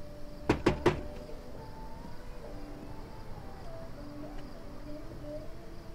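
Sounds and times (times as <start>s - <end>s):
faint hum: 0.0s - 5.9s
man knocking on the door of a guest house: 0.5s - 1.2s.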